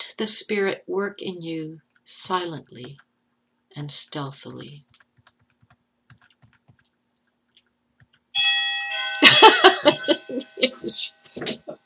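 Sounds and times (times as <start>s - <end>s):
speech: 0.2s - 3.1s, 3.8s - 5.0s, 10.1s - 11.8s
doorbell chime ringing: 8.4s - 11.4s
people laughing: 9.2s - 10.8s.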